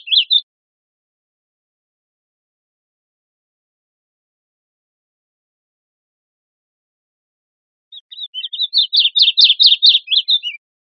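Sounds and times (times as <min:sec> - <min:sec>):
bird calling with high thin chirps: 0:00.0 - 0:00.4, 0:07.9 - 0:10.6.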